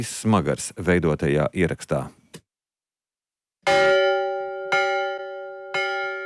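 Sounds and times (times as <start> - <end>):
speech: 0.0 - 2.2
church bell rung by the memorial house at Berķinele: 3.7 - 6.2.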